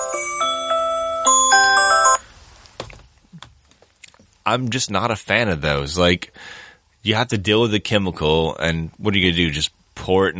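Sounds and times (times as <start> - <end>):
alarm playing a bright electronic melody of chiming tones: 0.0 - 2.2
soft knocks and thumps: 2.8 - 3.6
speech: 4.5 - 10.3.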